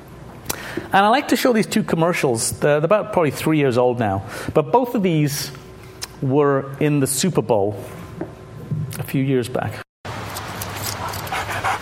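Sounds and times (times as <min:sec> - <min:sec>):
low hum: 0:00.0 - 0:11.8
speech: 0:00.8 - 0:05.6, 0:06.2 - 0:08.3, 0:09.0 - 0:09.8
dog panting in a TV commercial: 0:10.8 - 0:11.8.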